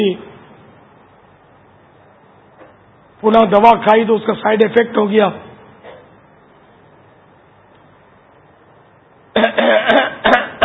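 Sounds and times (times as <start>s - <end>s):
speech: 0.0s - 0.3s, 3.2s - 5.5s
harsh coughing from a person with a persistent cough and hoarse voice: 9.4s - 10.6s.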